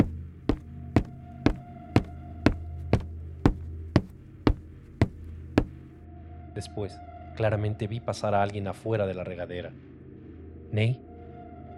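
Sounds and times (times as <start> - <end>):
sharp heel footsteps clicking on a hard floor: 0.0 - 5.8
speech: 6.6 - 9.9, 10.7 - 11.0.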